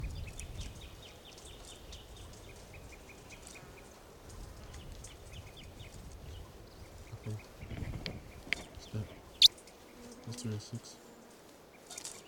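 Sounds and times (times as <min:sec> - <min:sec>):
birds chirping: 0:00.0 - 0:12.2
faint steady hiss: 0:00.1 - 0:12.2
speech: 0:10.4 - 0:11.1.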